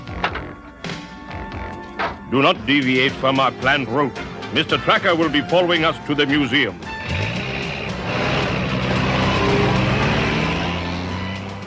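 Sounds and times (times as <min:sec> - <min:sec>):
truck engines idling in a traffic jam: 0:00.0 - 0:11.6
speech: 0:02.3 - 0:06.9
low droning vehicle noise in a traffic jam: 0:06.2 - 0:11.6.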